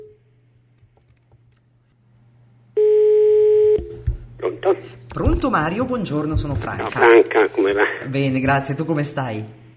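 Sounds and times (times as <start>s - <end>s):
telephone ringback tone while placing a call: 2.8s - 3.8s
speech: 4.7s - 9.6s.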